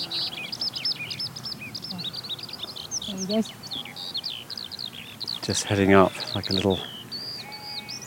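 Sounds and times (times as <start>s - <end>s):
skylark singing high twittering chirps and trills: 0.0s - 8.0s
speech: 3.2s - 3.6s, 5.5s - 7.0s.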